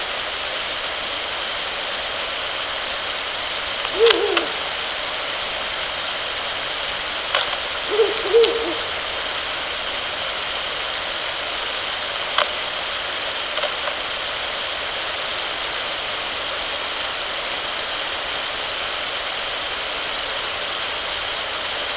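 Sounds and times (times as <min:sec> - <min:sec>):
constant electrical hiss and whine: 0:00.0 - 0:21.9
male Ural owl hooting: 0:03.4 - 0:05.2, 0:07.7 - 0:09.5.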